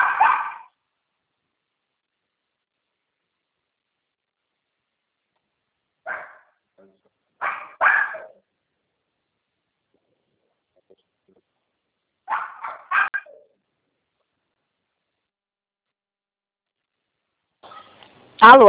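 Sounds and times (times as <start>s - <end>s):
small dog barking at home: 0.0s - 0.8s, 6.0s - 6.6s, 7.4s - 8.5s, 12.2s - 13.6s
speech: 18.4s - 18.6s.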